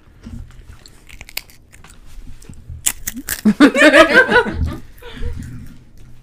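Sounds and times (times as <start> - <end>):
person biting into crisp chips: 0.7 - 3.7
burst of laughter: 3.5 - 4.8.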